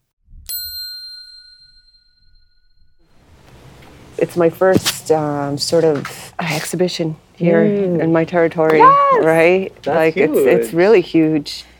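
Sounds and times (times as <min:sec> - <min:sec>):
single clear bell strike ringing: 0:00.5 - 0:03.1
soft broadband rush of noise: 0:03.3 - 0:11.4
speech: 0:04.2 - 0:11.7.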